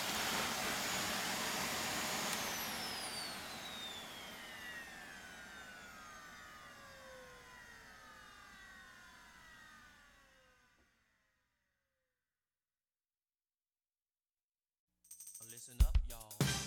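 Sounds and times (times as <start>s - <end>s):
vacuum cleaner motor spinning down: 0.0s - 11.1s.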